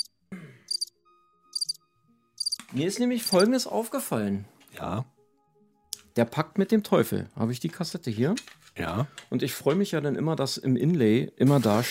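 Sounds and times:
crickets chirping used as filler music: 0.7s - 0.9s, 1.6s - 1.8s, 2.4s - 2.6s
speech: 2.7s - 5.1s, 6.2s - 11.8s.

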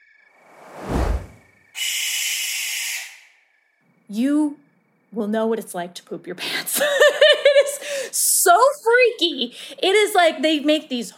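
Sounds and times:
rushing whoosh: 0.5s - 1.4s
harsh raspy owl screech: 1.8s - 3.4s
speech: 4.1s - 7.4s, 8.1s - 11.1s.

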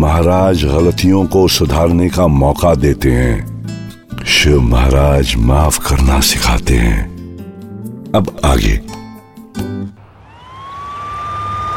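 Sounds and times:
speech: 0.2s - 3.5s, 4.2s - 7.1s, 8.1s - 9.0s
ambulance siren wailing: 10.1s - 11.7s.

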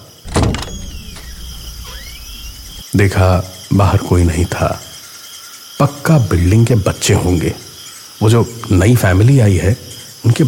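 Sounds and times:
door creaking open: 0.0s - 2.9s
speech: 2.9s - 4.9s, 5.8s - 7.6s, 8.2s - 10.4s.

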